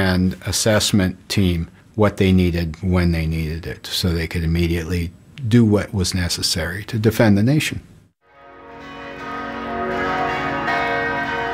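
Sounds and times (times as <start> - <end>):
speech: 0.0 - 7.9
church bells ringing: 8.3 - 11.5.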